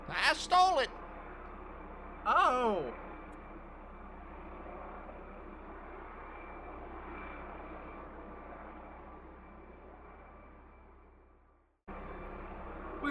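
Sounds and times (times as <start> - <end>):
helicopter flying: 0.0 - 13.1
speech: 0.4 - 1.1, 2.2 - 3.1.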